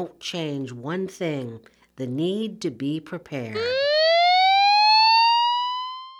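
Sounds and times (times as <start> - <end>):
speech: 0.0 - 3.8
tsunami warning siren wailing: 3.6 - 6.1.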